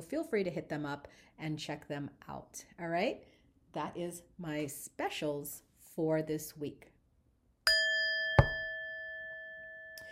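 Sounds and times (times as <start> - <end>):
speech: 0.0 - 6.9
bell struck and ringing: 7.7 - 10.1.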